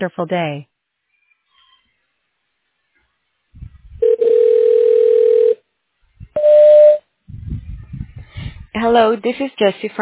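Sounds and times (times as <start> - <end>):
speech: 0.0 - 0.7, 8.8 - 10.0
faint noises: 3.5 - 4.1, 7.3 - 10.0
electronic telephone tone: 4.0 - 5.6, 6.4 - 7.0
short high beep like a voicemail recording tone: 6.4 - 7.0.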